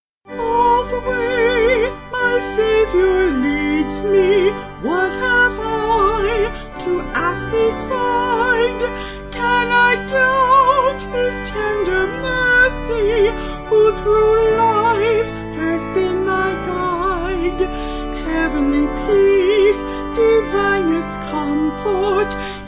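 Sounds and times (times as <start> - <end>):
organ: 0.3 - 22.6
vocals: 0.3 - 22.6.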